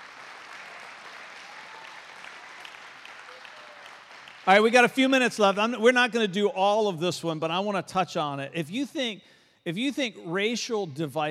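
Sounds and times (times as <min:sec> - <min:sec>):
large church audience applause: 0:00.0 - 0:05.6
speech: 0:04.5 - 0:11.2.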